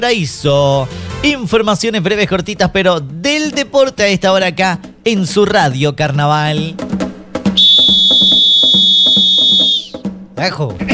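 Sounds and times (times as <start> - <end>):
speech: 0.0 - 7.0, 10.4 - 10.9
quick rhythmic thumping beat: 1.6 - 10.9
loud shrill whistle holding one high note: 7.6 - 10.1.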